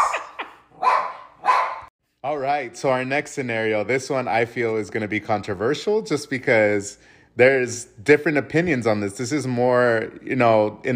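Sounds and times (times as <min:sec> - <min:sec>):
dogs barking: 0:00.0 - 0:01.9
speech: 0:02.2 - 0:10.9.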